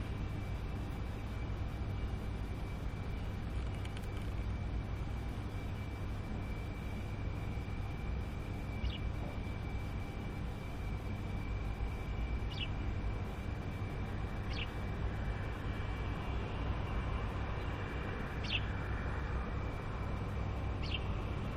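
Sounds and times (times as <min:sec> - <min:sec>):
thin steady tone: 0:00.0 - 0:21.5
sparrow calls at Musaffah Corniche: 0:08.8 - 0:09.1, 0:12.5 - 0:12.8, 0:14.5 - 0:14.8, 0:18.4 - 0:18.7, 0:20.8 - 0:21.1.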